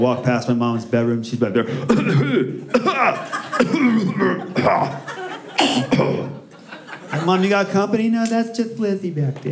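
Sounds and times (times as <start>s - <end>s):
speech: 0.0s - 6.4s, 7.1s - 9.4s
person imitating the cough of a small dog: 1.9s - 4.9s, 5.6s - 6.4s
laughter: 2.8s - 8.0s.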